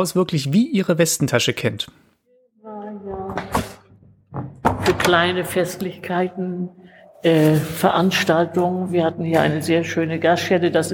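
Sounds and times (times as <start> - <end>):
speech: 0.0 - 2.1, 4.9 - 10.9
door knock or thud: 3.1 - 5.3.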